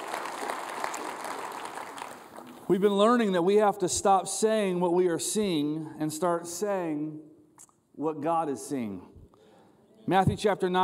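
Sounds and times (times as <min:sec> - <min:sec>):
audience applauding: 0:00.0 - 0:02.7
speech: 0:02.7 - 0:07.3, 0:08.0 - 0:09.1, 0:10.1 - 0:10.8.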